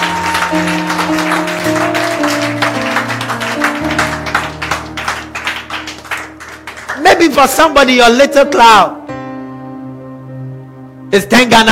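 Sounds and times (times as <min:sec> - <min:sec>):
audience clapping: 0:00.0 - 0:07.9
sustained keyboard or organ chords: 0:00.0 - 0:11.6
speech: 0:07.4 - 0:09.0, 0:11.1 - 0:11.6.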